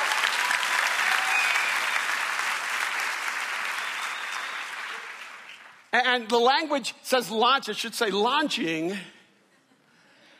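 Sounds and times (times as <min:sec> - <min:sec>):
audience applause: 0:00.0 - 0:05.9
speech: 0:06.0 - 0:09.2.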